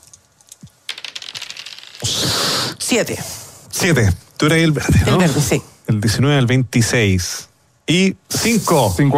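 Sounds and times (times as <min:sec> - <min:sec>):
dice clattering and rattling: 0:00.0 - 0:02.2
speech: 0:02.9 - 0:09.1.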